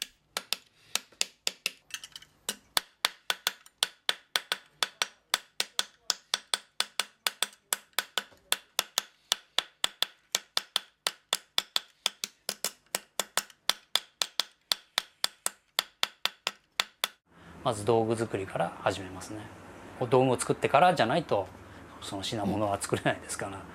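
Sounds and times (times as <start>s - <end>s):
hammer blows shaping copper sheet: 2.5s - 17.2s
speech: 17.7s - 23.7s.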